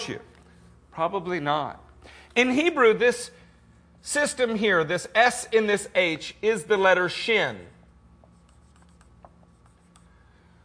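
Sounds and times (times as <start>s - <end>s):
speech: 0.0s - 0.3s, 1.0s - 3.4s, 4.0s - 7.8s
faint steady hum: 0.0s - 10.6s
marker or chalk drawing a letter on a board: 8.2s - 10.1s.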